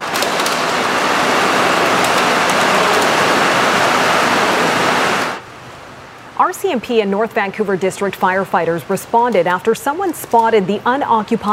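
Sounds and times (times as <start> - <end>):
fast-moving creek water rushing: 0.0 - 5.4
speech: 6.5 - 11.5.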